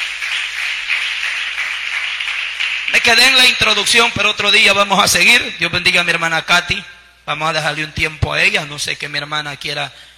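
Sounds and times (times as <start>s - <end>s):
congregation applauding in a church: 0.0s - 3.8s
speech: 2.9s - 10.1s.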